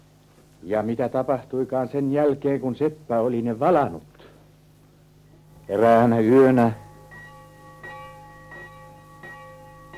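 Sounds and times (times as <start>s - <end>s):
speech: 0.6s - 4.1s, 5.7s - 6.8s
bells ringing as a fire alarm in a town: 5.5s - 9.9s.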